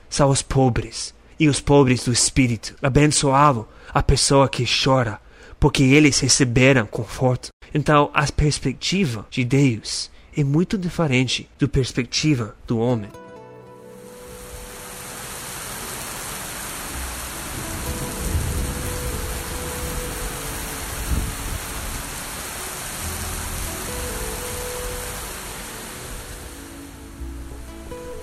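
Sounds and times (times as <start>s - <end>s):
speech: 0.2s - 13.2s
heavy rain pouring down: 13.9s - 28.2s.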